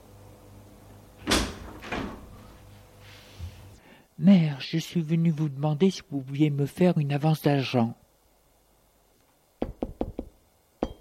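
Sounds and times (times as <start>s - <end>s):
speech: 4.2s - 8.0s
maid knocking on a door: 9.6s - 11.0s.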